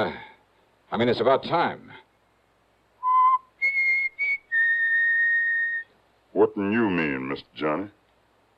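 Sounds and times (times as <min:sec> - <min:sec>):
speech: 0:00.0 - 0:00.3, 0:00.9 - 0:02.0, 0:06.4 - 0:08.0
person whistling a short tune: 0:03.0 - 0:05.9.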